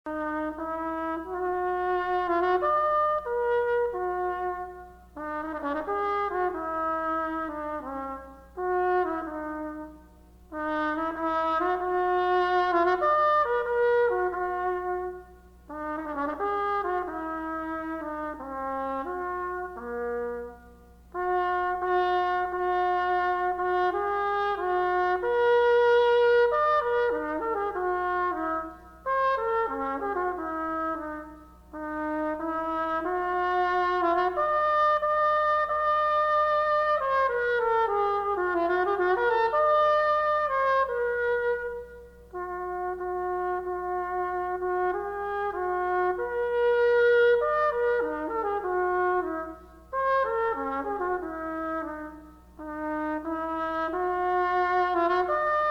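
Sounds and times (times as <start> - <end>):
trumpet melody: 0.1 - 55.6.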